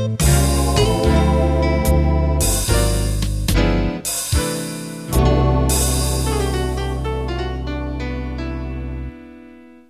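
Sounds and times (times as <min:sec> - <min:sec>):
slow jazz ending: 0:00.2 - 0:04.5, 0:05.1 - 0:09.6.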